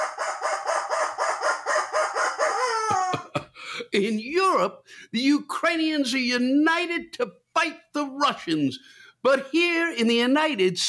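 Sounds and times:
rubber chicken toy squawk: 0.0s - 3.2s
speech: 3.9s - 10.8s.

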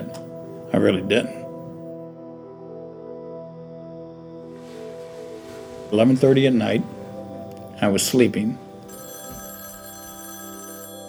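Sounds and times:
speech: 0.7s - 1.4s, 5.9s - 7.0s, 7.8s - 8.6s
telephone ringing with bright electronic tones: 8.0s - 11.0s.

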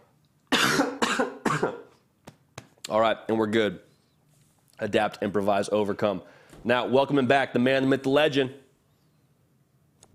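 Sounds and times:
harsh coughs: 0.5s - 2.0s
speech: 1.2s - 1.8s, 2.9s - 3.9s, 4.8s - 8.6s.

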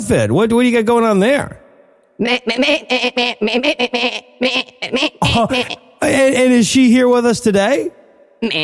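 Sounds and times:
speech: 0.0s - 1.6s, 2.2s - 8.6s
pygmy goat bleating: 2.2s - 5.9s.

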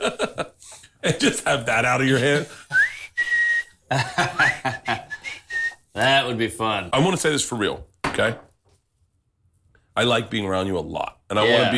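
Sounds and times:
speech: 0.0s - 0.4s, 1.1s - 2.6s, 3.9s - 4.8s, 6.0s - 8.5s, 10.0s - 11.7s
laughter: 0.0s - 2.5s, 3.9s - 5.3s
person whistling: 2.7s - 5.9s.

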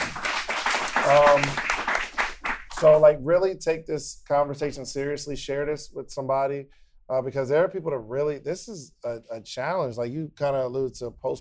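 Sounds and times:
live audience applause: 0.0s - 3.0s
speech: 1.1s - 1.7s, 2.8s - 11.3s.

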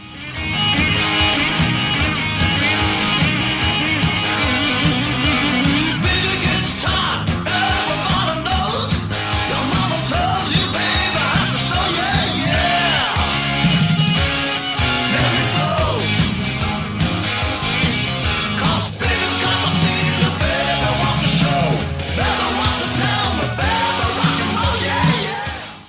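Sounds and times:
rock and roll song with distorted guitars and pounding drums: 0.0s - 25.8s
raw shouted vocals: 6.0s - 8.9s, 9.5s - 13.6s, 14.9s - 16.2s, 18.6s - 25.8s.

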